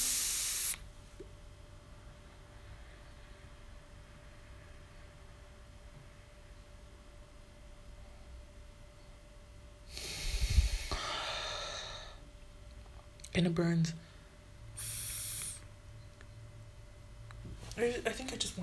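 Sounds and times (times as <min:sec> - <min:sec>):
person exhaling vape smoke during a French inhale: 0:00.0 - 0:00.8, 0:09.9 - 0:12.2, 0:14.8 - 0:15.7
speech: 0:13.4 - 0:14.1, 0:17.8 - 0:18.6.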